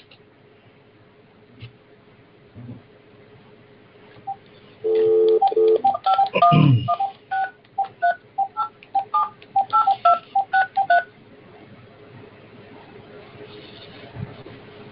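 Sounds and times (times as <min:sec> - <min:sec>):
telephone keypad dialing tones in two-tone pairs: 0:04.3 - 0:11.0.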